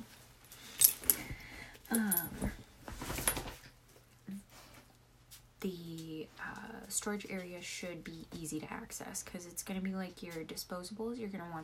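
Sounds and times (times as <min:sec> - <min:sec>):
metallic jingling of dog collar tags: 0:00.7 - 0:01.2
speech: 0:01.9 - 0:02.4, 0:05.6 - 0:11.6.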